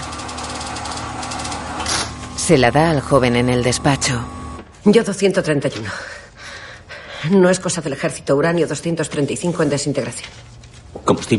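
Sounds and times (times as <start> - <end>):
printer feeding out paper tape: 0.0 - 2.4
speech: 2.5 - 6.2, 7.2 - 11.3.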